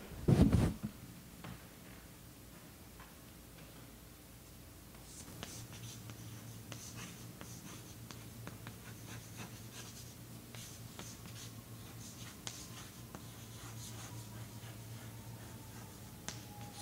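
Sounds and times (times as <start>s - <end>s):
low hum: 0.0s - 16.8s
pen or pencil scratching across paper in handwriting: 5.1s - 15.9s.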